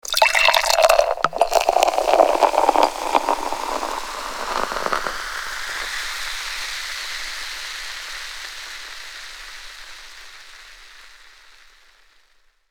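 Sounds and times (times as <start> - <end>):
beer pouring in a bar: 0.0 - 6.0.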